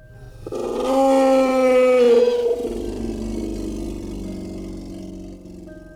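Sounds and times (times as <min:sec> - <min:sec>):
creature howling: 0:00.4 - 0:05.9.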